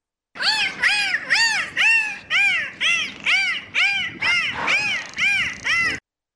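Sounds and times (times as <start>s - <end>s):
dolphin calling from the sea surface in thick fog: 0.4s - 6.0s.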